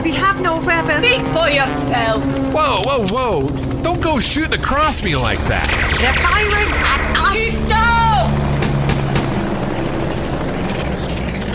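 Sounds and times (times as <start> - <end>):
aircraft tagged as a helicopter flying close overhead during a missile attack: 0.0 - 11.5
speech: 0.4 - 8.0
sharp clicks: 2.8 - 3.3.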